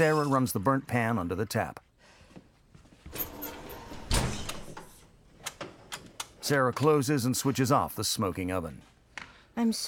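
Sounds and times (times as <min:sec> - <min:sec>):
speech: 0:00.0 - 0:01.9, 0:06.5 - 0:08.9, 0:09.6 - 0:09.8
French doors swinging open with a soft rattle: 0:03.1 - 0:05.0
French doors shutting with a solid thud: 0:03.9 - 0:04.9.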